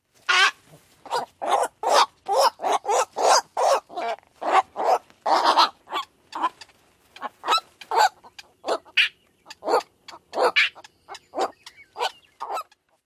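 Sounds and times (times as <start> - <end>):
Black-crowned Night-Heron rookery calls: 0.2 - 12.9.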